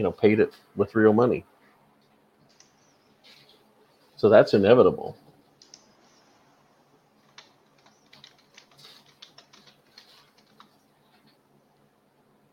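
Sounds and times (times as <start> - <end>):
speech: 0.0 - 1.5, 4.2 - 5.2
typing on a computer keyboard: 5.6 - 5.9, 7.2 - 10.8.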